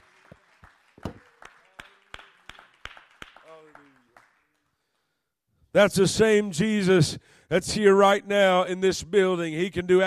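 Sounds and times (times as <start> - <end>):
crowd clapping hands in a steady even rhythm: 0.0 - 5.2
speech: 5.8 - 10.0.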